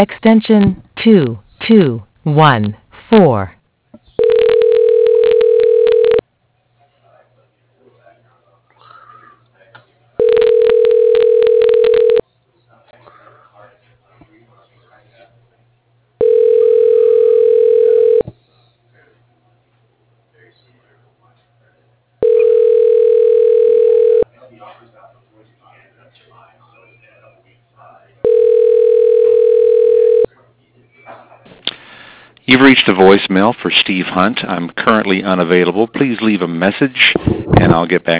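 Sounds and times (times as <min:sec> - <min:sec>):
speech: 0:00.0 - 0:03.6, 0:32.5 - 0:38.1
telephone ringing tones while a call is dialed through an office voicemail directory: 0:04.2 - 0:06.2, 0:10.2 - 0:12.2, 0:16.2 - 0:18.3, 0:22.2 - 0:24.2, 0:28.2 - 0:30.3.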